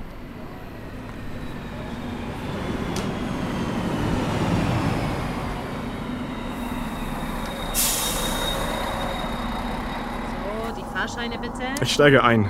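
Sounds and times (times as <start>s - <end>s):
faint train wheel whine: 0.0s - 12.4s
train rumbling as it arrives: 0.0s - 12.4s
train air-brake hiss: 7.6s - 9.1s
speech: 11.1s - 12.4s.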